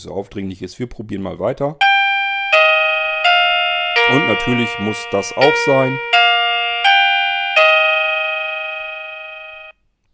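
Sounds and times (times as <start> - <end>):
speech: 0.0 - 1.9, 4.1 - 6.2
wireless doorbell three-note electronic chime: 1.8 - 9.7.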